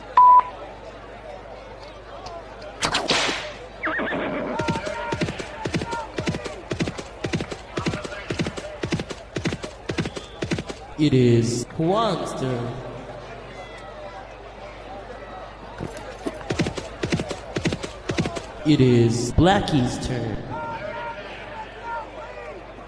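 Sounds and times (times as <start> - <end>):
brief beep: 0.2 - 0.6
horse whinnying: 3.8 - 5.0
horse hoofbeats running on a race track: 4.5 - 11.0, 15.8 - 18.6
speech: 11.0 - 12.9, 18.6 - 20.4.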